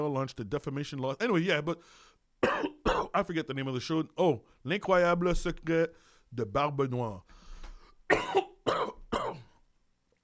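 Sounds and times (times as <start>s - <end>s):
speech: 0.0s - 7.4s
dry harsh coughs: 2.4s - 3.2s, 8.1s - 9.6s.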